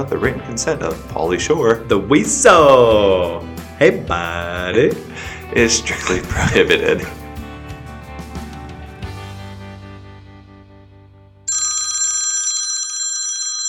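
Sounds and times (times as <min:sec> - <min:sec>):
speech: 0:00.0 - 0:07.2
musical passage: 0:00.0 - 0:11.5
telephone bell ringing with a bright metallic trill: 0:11.5 - 0:13.6.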